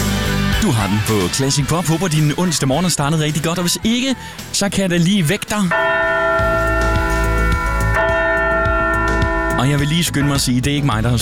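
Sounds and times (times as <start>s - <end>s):
laughter: 0.5s - 5.8s
speech: 0.6s - 7.0s, 9.6s - 11.1s
large church bell ringing: 5.7s - 10.6s.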